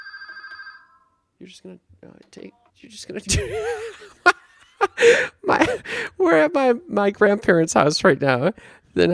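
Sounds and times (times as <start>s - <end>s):
landline telephone ringing with an electronic trill: 0.0s - 1.2s
speech: 1.4s - 4.4s, 5.0s - 9.1s.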